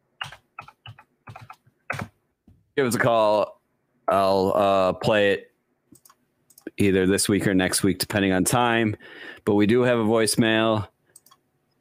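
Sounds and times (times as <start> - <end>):
typing a phone number on a computer keyboard: 0.2 - 2.1
speech: 2.8 - 5.5, 6.8 - 10.9.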